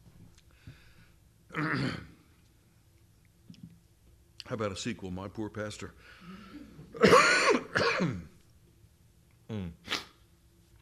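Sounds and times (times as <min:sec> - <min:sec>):
speech: 0:01.5 - 0:02.1, 0:04.5 - 0:07.4, 0:08.0 - 0:08.3
person clearing throat: 0:01.5 - 0:02.2, 0:06.9 - 0:08.4
person coughing: 0:01.5 - 0:02.2, 0:06.5 - 0:08.3.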